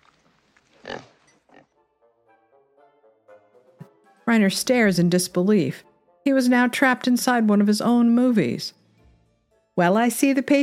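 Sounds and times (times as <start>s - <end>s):
pig oinking with snorts and squealing grunts: 0.8s - 1.8s
speech: 4.3s - 8.8s, 9.8s - 10.6s.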